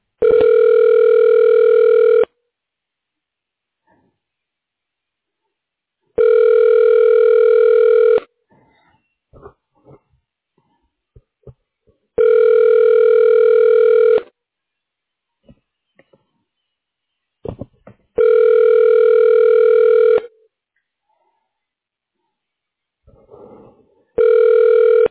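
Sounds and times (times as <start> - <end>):
telephone ringback tone while a call is forwarded: 0.2 - 2.3, 6.2 - 8.3, 12.2 - 14.3, 18.2 - 20.3, 24.2 - 25.0.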